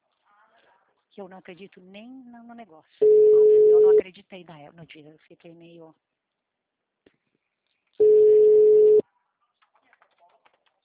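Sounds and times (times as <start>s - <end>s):
speech: 1.2s - 6.1s
mid-pitched telephone tone while a call is placed: 3.0s - 4.0s, 8.0s - 9.0s.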